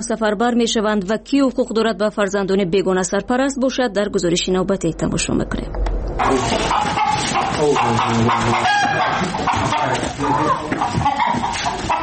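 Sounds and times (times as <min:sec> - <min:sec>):
speech: 0:00.0 - 0:11.0
chickens clucking in a barnyard: 0:06.2 - 0:12.0
rooster crowing in a barnyard: 0:06.2 - 0:12.0.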